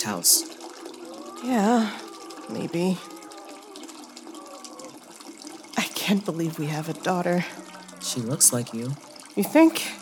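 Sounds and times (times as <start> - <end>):
speech: 0.0 - 0.6, 1.4 - 3.1, 6.1 - 10.0
water running from a tap: 0.0 - 10.0.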